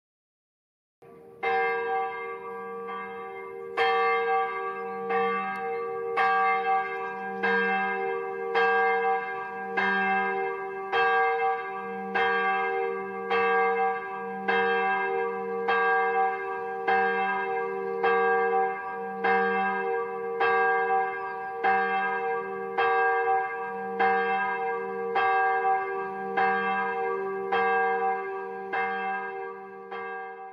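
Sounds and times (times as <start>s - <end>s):
Puttershoek village church bell in the Hoeksche Waard: 1.0s - 30.5s.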